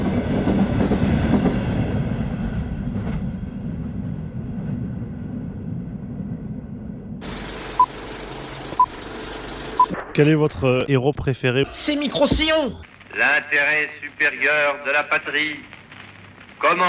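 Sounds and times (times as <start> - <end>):
freight train locomotive pulling a computer-controlled convoy on rails: 0.0 - 8.6
speech: 10.2 - 15.7, 16.6 - 16.8.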